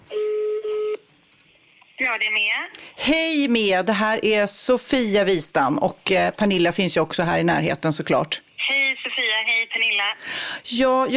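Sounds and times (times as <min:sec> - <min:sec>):
steady electronic telephone dialing tones: 0:00.1 - 0:01.0
speech: 0:02.1 - 0:08.8, 0:09.4 - 0:11.1.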